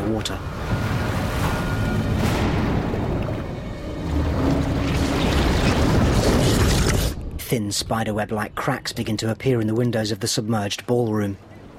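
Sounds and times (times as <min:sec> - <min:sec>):
speech: 0:00.1 - 0:00.7, 0:07.5 - 0:11.5
underwater explosion tearing across the deck of a stricken ship: 0:02.0 - 0:07.4.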